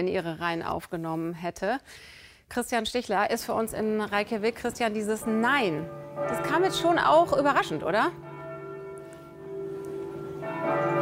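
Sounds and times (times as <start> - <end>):
speech: 0.0 - 8.3
church bells ringing in Reykjavik Iceland: 3.7 - 11.0.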